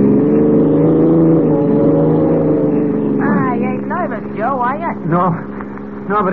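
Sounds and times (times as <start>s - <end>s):
police car engine roaring at 70: 0.0s - 6.3s
speech: 5.1s - 6.3s.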